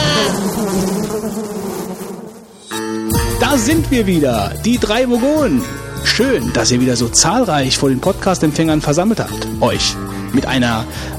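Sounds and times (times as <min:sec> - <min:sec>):
swarm of bees buzzing: 0:00.0 - 0:03.5
speech: 0:03.6 - 0:11.1.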